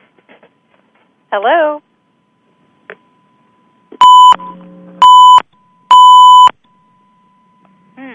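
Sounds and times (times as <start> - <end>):
speech: 1.3 - 1.9
lower buzzy tone: 3.0 - 8.1
loud electronic beeps from a phone line: 4.0 - 7.7.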